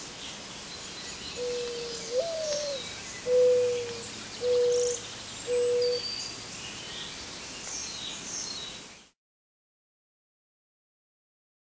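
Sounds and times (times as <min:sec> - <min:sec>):
mourning dove song: 0:01.4 - 0:06.0.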